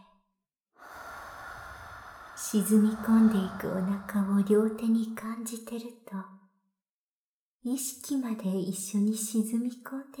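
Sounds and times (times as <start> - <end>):
slow breathing in and out during a relaxation exercise: 0.8 - 5.2
speech: 2.4 - 6.4, 7.6 - 10.1.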